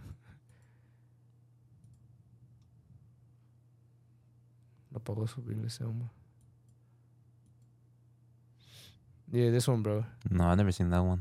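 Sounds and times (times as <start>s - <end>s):
steady low electrical hum: 0.0s - 11.1s
quiet sharp computer mouse clicks: 1.8s - 2.7s
speech: 5.0s - 6.2s, 9.3s - 11.1s.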